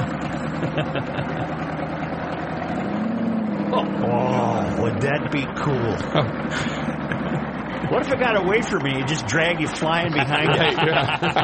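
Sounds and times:
laughter: 0.0s - 2.1s, 3.8s - 11.4s
vehicle engine with straight pipes rumbling: 0.0s - 11.4s
speech: 0.8s - 1.6s, 3.8s - 6.8s, 7.9s - 11.4s.

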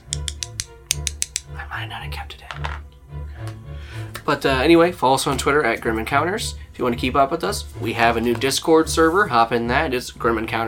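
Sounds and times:
two dice clicking together: 0.0s - 1.5s
speech: 1.8s - 2.8s, 4.3s - 10.6s.

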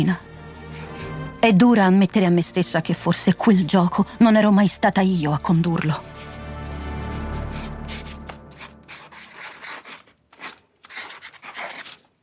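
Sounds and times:
speech: 0.0s - 0.3s, 1.4s - 6.2s
pen nib scratching on paper: 7.1s - 12.1s.

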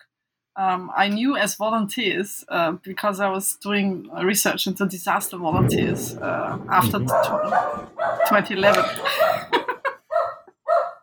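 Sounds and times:
speech: 0.6s - 9.4s
dogs barking: 7.1s - 8.4s, 10.1s - 11.0s
laughter: 8.6s - 10.1s.

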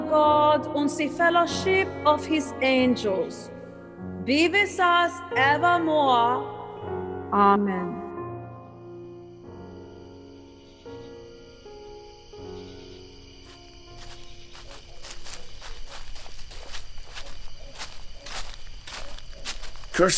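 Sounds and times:
speech: 0.1s - 3.6s, 4.2s - 6.6s, 7.3s - 8.0s, 20.0s - 20.1s
footsteps crunching through a cemetery: 13.4s - 20.1s.

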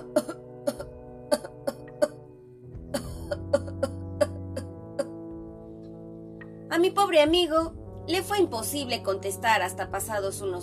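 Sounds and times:
person in a long coughing fit: 0.0s - 2.2s, 2.9s - 5.2s
speech: 0.2s - 0.4s, 6.8s - 10.6s.

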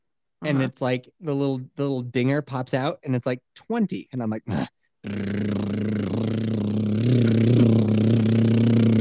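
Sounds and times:
speech: 0.4s - 5.7s, 7.1s - 7.5s
voice imitating a boat engine with a low buzzing drone: 5.0s - 8.9s.

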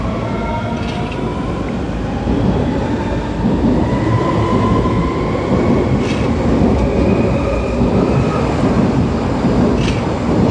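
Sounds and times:
commuter train pulling away: 0.0s - 10.4s.

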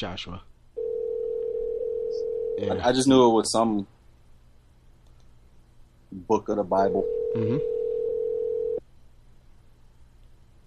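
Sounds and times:
speech: 0.0s - 0.5s, 2.2s - 4.0s, 6.1s - 7.8s
telephone line tone: 0.8s - 2.6s, 6.9s - 8.8s.

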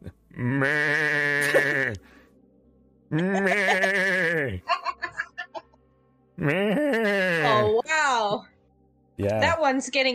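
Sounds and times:
irradiated goats bleating in a video game: 0.4s - 2.0s, 3.1s - 4.6s, 6.4s - 7.8s
speech: 0.4s - 2.0s, 3.1s - 4.7s, 6.4s - 7.7s, 9.2s - 10.1s.

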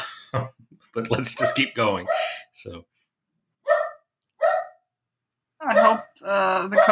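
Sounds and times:
speech: 0.3s - 2.9s, 5.8s - 6.8s
dog barking during a sudden thunderstorm: 1.4s - 2.4s, 3.6s - 4.8s, 5.7s - 6.1s.

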